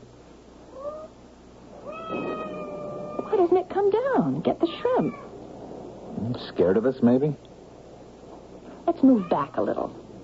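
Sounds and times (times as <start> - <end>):
faint noise: 0.0 - 10.2
cat meowing: 0.7 - 1.2, 1.8 - 3.4, 4.8 - 5.4
speech: 3.5 - 5.3, 6.2 - 7.5, 8.9 - 10.0.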